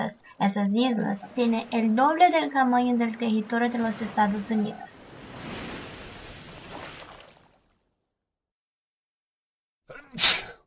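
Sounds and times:
speech: 0:00.4 - 0:05.0
sneeze: 0:09.9 - 0:10.6.

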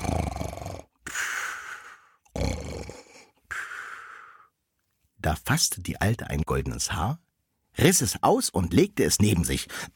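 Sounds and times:
sleeping man snoring and blowing breaths: 0:00.0 - 0:00.9, 0:02.2 - 0:03.3
speech: 0:05.2 - 0:07.2, 0:07.8 - 0:09.9.

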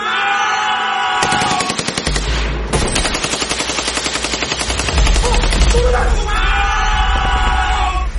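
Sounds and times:
soldiers shouting a charge: 0:00.0 - 0:01.8, 0:05.0 - 0:08.1
heavy gunfire from soldiers opening fire together: 0:01.2 - 0:06.3.

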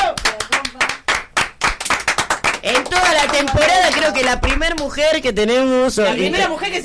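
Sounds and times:
small crowd clapping at a live acoustic session: 0:00.0 - 0:05.3
speech: 0:02.6 - 0:06.8.

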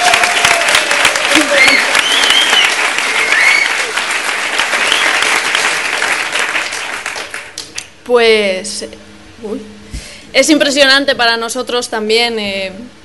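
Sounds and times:
faint whistles or cheers: 0:00.0 - 0:03.9, 0:04.8 - 0:05.3
audience applause from a live event crowd: 0:00.0 - 0:07.7
speech: 0:08.1 - 0:09.7, 0:10.3 - 0:13.0.

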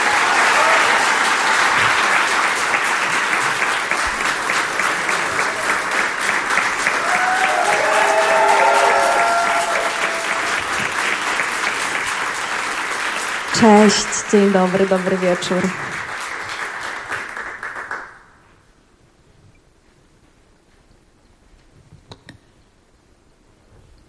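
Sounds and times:
crowd whooping: 0:00.0 - 0:11.6
audience applause greeting a singer's debut album release: 0:00.0 - 0:18.4
speech: 0:13.6 - 0:15.9.

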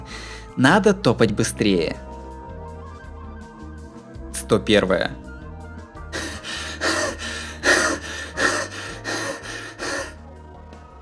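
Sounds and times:
heavy laboured breathing of someone trudging through space: 0:00.0 - 0:00.6, 0:06.1 - 0:10.4
speech: 0:00.6 - 0:02.1, 0:04.5 - 0:05.2.

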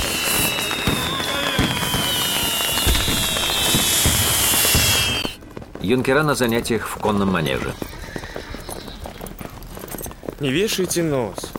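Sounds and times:
fireworks bursting in a dark sky during a night celebration: 0:00.0 - 0:05.7
speech: 0:05.9 - 0:08.0, 0:10.4 - 0:11.5.

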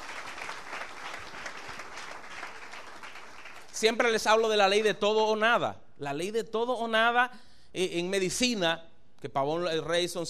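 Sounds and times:
congregation applauding during a church sermon: 0:00.0 - 0:05.0
speech: 0:03.8 - 0:10.2.

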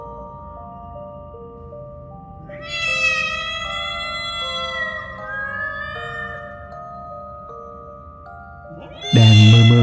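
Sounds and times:
several cats meowing at once: 0:02.5 - 0:06.7, 0:08.7 - 0:09.8.

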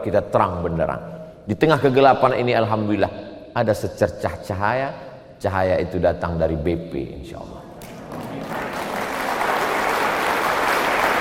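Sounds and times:
speech: 0:00.0 - 0:08.4
audience applause from a crowd at a gathering: 0:07.8 - 0:11.1.

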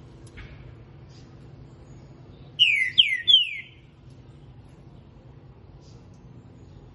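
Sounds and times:
Green-winged saltator singing three clear whistled notes: 0:02.6 - 0:03.8.

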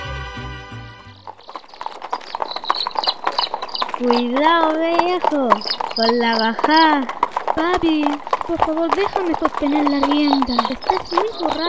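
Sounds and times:
musical passage: 0:00.0 - 0:01.3
horse hooves clip-clopping pulling an iron-wheeled cart: 0:01.0 - 0:11.6
speech: 0:04.0 - 0:11.6.

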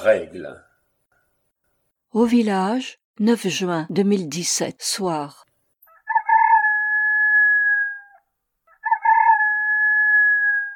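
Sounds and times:
speech: 0:00.0 - 0:00.7, 0:02.1 - 0:05.4
rooster crowing in a village: 0:05.8 - 0:10.7.

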